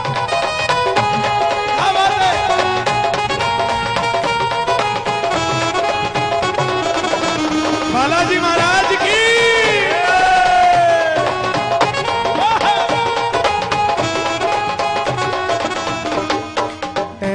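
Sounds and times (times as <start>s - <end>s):
loud live music: 0.0s - 17.3s
large crowd cheering: 8.0s - 11.8s
large crowd clapping: 8.6s - 13.6s.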